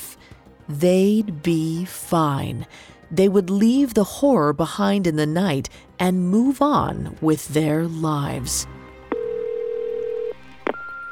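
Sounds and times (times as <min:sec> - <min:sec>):
speech: 0:00.7 - 0:08.8
phone call ringing tone before voicemail: 0:09.1 - 0:11.1
voicemail beep: 0:09.2 - 0:11.1.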